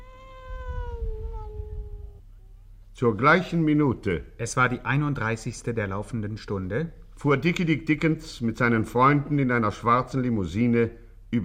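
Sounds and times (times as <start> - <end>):
tomcat meowing in a house: 0.0 - 2.2
steady low rumbling background: 0.0 - 7.5
speech: 3.0 - 11.4.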